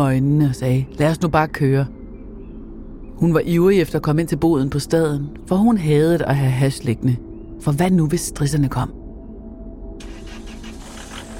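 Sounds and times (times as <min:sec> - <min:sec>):
speech: 0:00.0 - 0:02.0, 0:03.2 - 0:09.0
Volkswagen car engine starting: 0:10.0 - 0:11.3.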